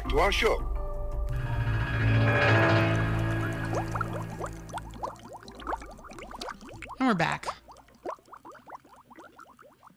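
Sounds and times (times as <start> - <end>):
speech: 0.1 - 0.7, 7.0 - 7.6
soft tonal hum: 1.2 - 6.6
bubbling water: 3.7 - 9.9.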